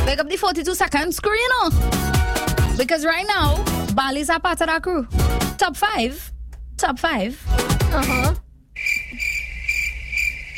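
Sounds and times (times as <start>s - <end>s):
speech: 0.1s - 8.4s
chorus of crickets chirping: 8.8s - 10.5s.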